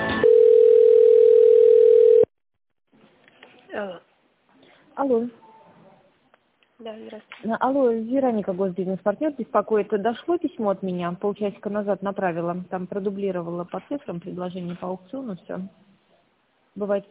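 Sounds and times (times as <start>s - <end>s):
steady single telephone tone during an office call transfer: 0.2s - 2.3s
speech: 7.1s - 15.9s, 16.7s - 17.0s.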